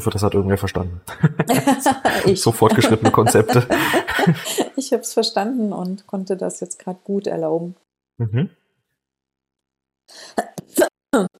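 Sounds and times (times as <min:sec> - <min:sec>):
speech: 0:00.0 - 0:08.6, 0:10.1 - 0:11.3
laughter: 0:01.1 - 0:04.8
harsh raspy coughing: 0:02.1 - 0:04.6.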